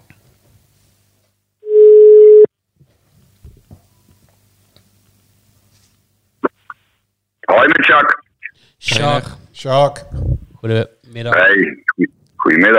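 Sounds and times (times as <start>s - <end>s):
telephone tone of an outgoing call: 1.6s - 2.5s
speech: 8.8s - 12.7s.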